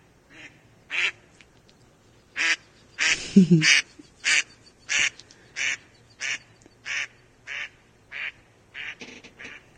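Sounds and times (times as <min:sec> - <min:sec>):
female mallard duck quacking: 0:02.4 - 0:09.7.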